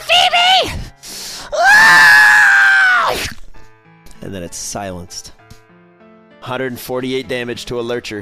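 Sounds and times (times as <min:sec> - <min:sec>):
voice imitating a shrill shriek: 0:01.5 - 0:03.4
speech: 0:04.5 - 0:05.4, 0:06.4 - 0:08.2.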